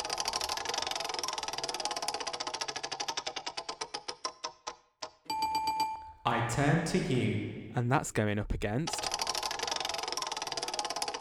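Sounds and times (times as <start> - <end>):
spinning prize wheel ratchet clicks: 0.0 - 4.4, 9.0 - 11.2
speech: 6.3 - 9.1.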